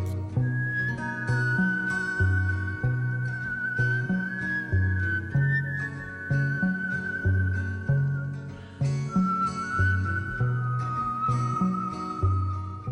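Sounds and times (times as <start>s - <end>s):
instrumental backing with a rhythmic bassline: 0.0s - 12.8s
melodic whistling: 0.0s - 12.8s.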